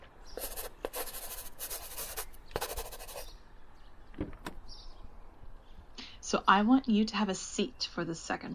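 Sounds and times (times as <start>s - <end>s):
pen scratching across a paper document as it is signed: 0.4s - 3.3s
speech: 6.3s - 8.5s.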